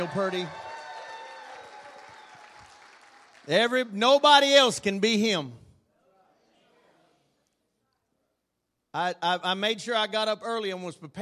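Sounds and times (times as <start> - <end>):
speech: 0.0 - 0.6, 3.4 - 5.6, 9.0 - 11.2
crowd applause: 0.0 - 4.0.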